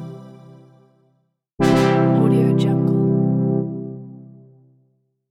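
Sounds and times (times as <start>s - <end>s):
synth tada fanfare: 1.6s - 4.2s.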